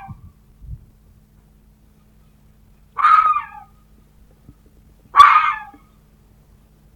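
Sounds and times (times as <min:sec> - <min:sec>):
red fox giving hoarse screeching barks: 0:03.0 - 0:03.8, 0:05.1 - 0:05.8.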